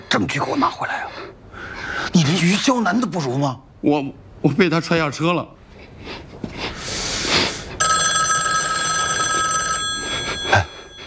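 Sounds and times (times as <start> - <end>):
speech: 0.2 - 1.4, 2.0 - 6.1
telephone ringing with a bright electronic trill: 7.8 - 11.0.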